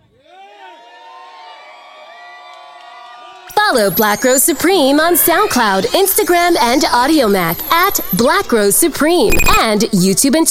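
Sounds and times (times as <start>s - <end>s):
live audience cheering and whooping: 0.1s - 4.3s
speech: 3.7s - 10.4s.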